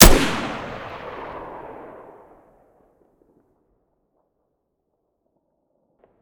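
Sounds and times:
RPK machine gun shooting: 0.0 - 1.3.

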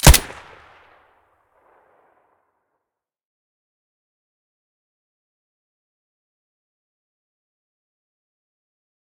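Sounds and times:
silenced gunshot: 0.0 - 0.8.

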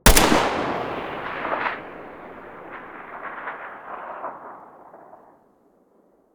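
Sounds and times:
Galil rifle muzzle blast: 0.0 - 5.1.

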